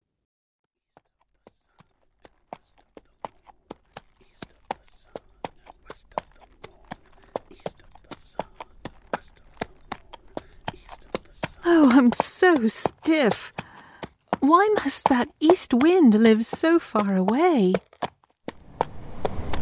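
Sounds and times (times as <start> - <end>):
horse hooves clip-clopping at a trot: 0.9 - 19.6
speech: 11.9 - 13.5, 14.5 - 17.9.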